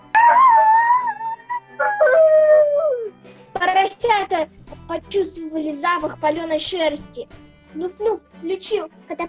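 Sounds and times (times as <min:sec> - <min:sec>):
wolf howling in pain: 0:00.0 - 0:03.2
speech: 0:04.3 - 0:09.2.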